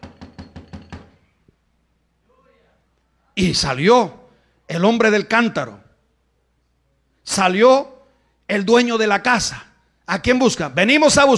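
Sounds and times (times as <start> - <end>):
firm knocks on a door: 0.0 - 1.2
speech: 3.4 - 5.8, 7.2 - 7.9, 8.5 - 11.3.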